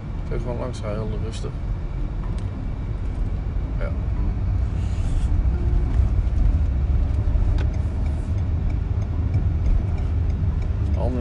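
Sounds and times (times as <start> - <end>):
car engine and tyre rumble approaching along a road: 0.0 - 11.2
low road noise: 0.0 - 11.2
speech: 0.3 - 2.5, 3.8 - 4.2, 11.0 - 11.2
faint ticking: 6.6 - 11.2.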